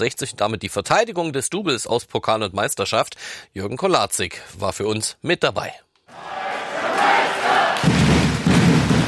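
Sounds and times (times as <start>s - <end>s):
speech: 0.0s - 6.4s
large arena crowd roaring and cheering at basketball championship: 6.1s - 9.0s
crowd thumping and stamping: 7.8s - 9.0s.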